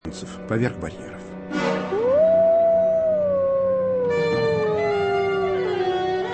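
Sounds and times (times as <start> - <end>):
speech: 0.2 - 1.2
wolves howling: 1.9 - 6.3.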